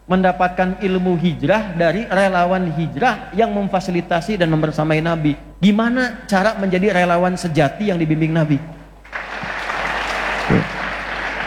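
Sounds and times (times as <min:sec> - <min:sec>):
speech: 0:00.1 - 0:08.8
audience applauding: 0:09.0 - 0:11.4.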